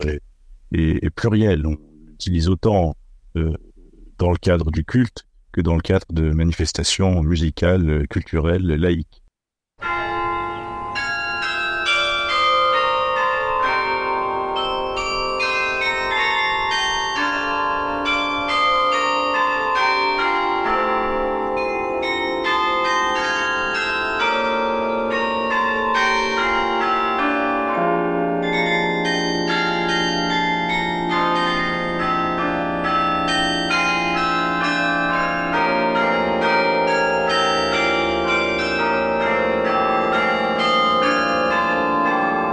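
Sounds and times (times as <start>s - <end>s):
speech: 0.0s - 9.2s
carillon of church bells playing a melody: 9.8s - 42.5s.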